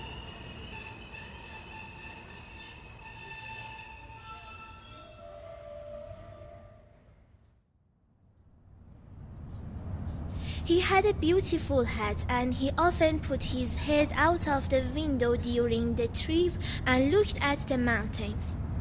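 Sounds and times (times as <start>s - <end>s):
high sustained metallic squealing tones: 0.0s - 7.2s
train rumbling along the rails: 0.0s - 7.4s, 8.8s - 18.7s
speech: 10.6s - 18.6s.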